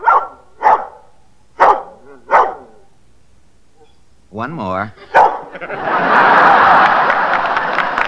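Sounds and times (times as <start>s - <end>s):
dog barking: 0.0s - 2.9s, 5.1s - 5.5s
speech: 4.4s - 6.9s
laughter: 5.0s - 8.0s.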